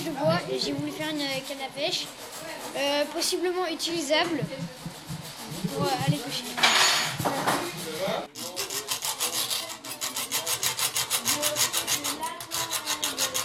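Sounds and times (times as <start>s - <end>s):
speech: 0.1s - 4.9s, 5.7s - 8.3s
hacksaw cutting metal: 8.4s - 13.4s.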